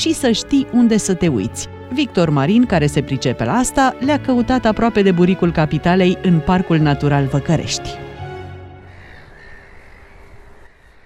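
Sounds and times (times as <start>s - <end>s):
speech: 0.0s - 8.0s
black-headed gulls calling: 8.8s - 11.0s.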